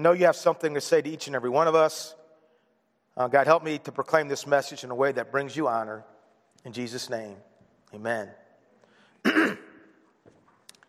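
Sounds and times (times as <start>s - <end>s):
speech: 0.0s - 2.2s, 3.2s - 8.4s, 9.2s - 9.6s
rough throat clearing: 9.2s - 10.0s.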